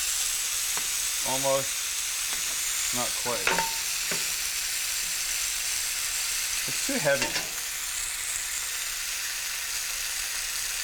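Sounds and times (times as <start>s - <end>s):
onion frying in a little oil for a fried bologna sandwich: 0.0s - 10.8s
speech: 1.2s - 1.8s, 2.9s - 4.2s, 6.6s - 7.6s.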